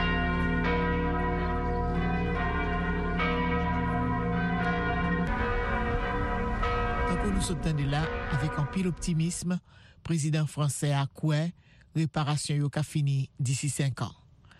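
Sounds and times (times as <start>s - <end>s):
large cathedral bells in France pealing to mark a cathedral fire: 0.0s - 9.5s
speech: 7.4s - 14.2s.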